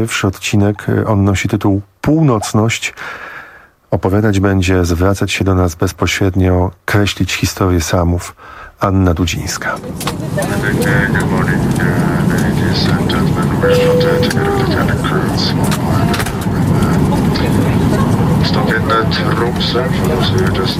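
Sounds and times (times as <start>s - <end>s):
speech: 0.0s - 3.3s, 3.9s - 17.7s, 18.5s - 20.7s
airliner cabin roar in flight over a northern fjord: 9.8s - 20.7s.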